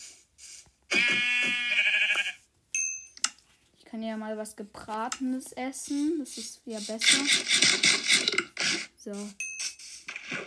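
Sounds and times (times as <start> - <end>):
sheep bleating: 0.9 - 2.4
speech: 4.0 - 7.9, 9.0 - 9.4.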